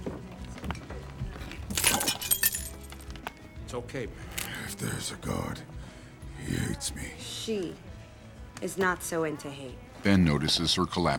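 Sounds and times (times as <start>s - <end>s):
drinking glass shattering: 1.7s - 2.9s
tinkling shards of a drinking glass: 1.8s - 3.0s
speech: 3.7s - 5.7s, 6.4s - 7.9s, 8.6s - 11.1s.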